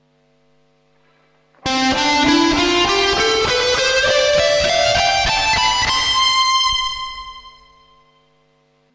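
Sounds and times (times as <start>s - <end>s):
guitar with reverb effects: 1.6s - 8.2s.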